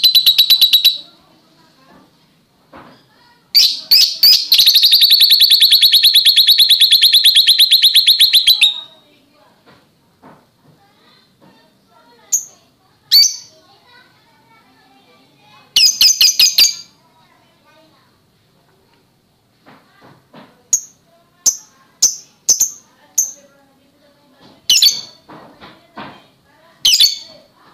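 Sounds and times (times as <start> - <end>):
Oriental magpie-robin chirping and rattling: 0.0 - 1.1, 3.6 - 8.9, 12.3 - 13.6, 15.8 - 17.0, 20.7 - 23.4, 24.7 - 25.2, 26.9 - 27.4.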